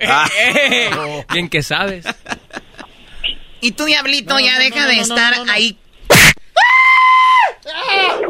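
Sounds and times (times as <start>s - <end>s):
speech: 0.0s - 2.4s, 3.6s - 5.8s
laughter: 0.0s - 2.9s
woman screaming: 6.6s - 8.2s.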